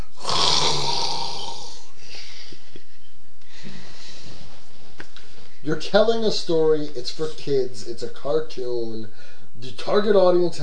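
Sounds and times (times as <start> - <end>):
person imitating a loud snore: 0.0 - 1.9
speech: 5.7 - 10.6.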